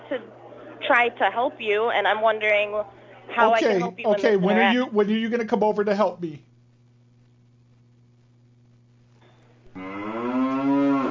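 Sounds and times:
quiet hum: 0.0s - 11.1s
speech: 0.1s - 6.5s
cow mooing: 9.8s - 11.1s.

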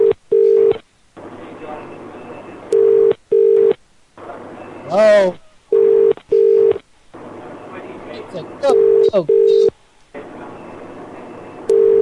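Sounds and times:
telephone ringback tone on a phone line: 0.0s - 0.8s, 2.7s - 3.8s, 5.7s - 6.8s, 8.6s - 9.7s, 11.7s - 11.9s
noise: 0.0s - 11.9s
speech: 4.9s - 5.4s, 9.1s - 9.7s.

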